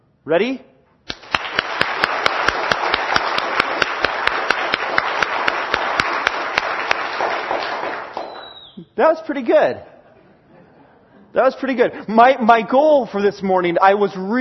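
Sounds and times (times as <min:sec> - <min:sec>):
speech: 0:00.2 - 0:00.7, 0:09.0 - 0:09.9, 0:11.3 - 0:14.4
large crowd clapping vigorously: 0:01.1 - 0:08.8.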